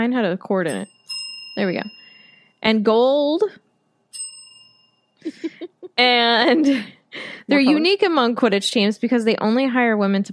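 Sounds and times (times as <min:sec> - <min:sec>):
speech: 0:00.0 - 0:01.0, 0:01.6 - 0:02.0, 0:02.6 - 0:03.6, 0:05.2 - 0:10.3
small hand bell ringing: 0:00.7 - 0:02.7, 0:04.1 - 0:05.5
laughter: 0:05.3 - 0:06.0.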